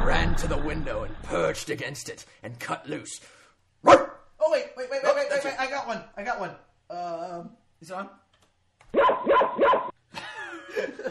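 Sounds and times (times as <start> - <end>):
speech: 0.1 - 8.2
dog at a window barking loudly at another dog: 3.8 - 4.2
laughter: 10.1 - 11.0.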